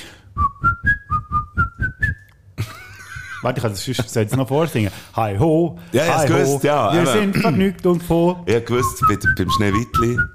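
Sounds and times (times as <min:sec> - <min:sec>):
person whistling a familiar melody: 0:00.4 - 0:02.3, 0:08.8 - 0:10.3
speech: 0:03.4 - 0:10.3.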